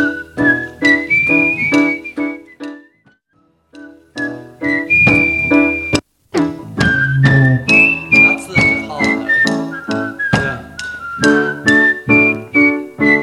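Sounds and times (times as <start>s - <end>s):
person whistling a simple steady melody: 0.0s - 3.1s, 4.2s - 6.0s, 6.7s - 13.2s.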